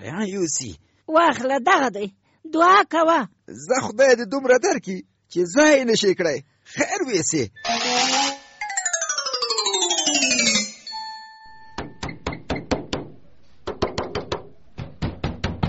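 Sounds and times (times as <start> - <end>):
speech: 0.0 - 8.2
descending electronic chime: 7.6 - 12.0
hard knocking on a door: 11.8 - 15.6.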